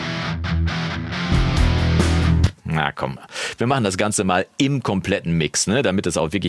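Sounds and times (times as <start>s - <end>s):
distorted electric guitar chords: 0.0s - 2.6s
speech: 2.8s - 6.4s.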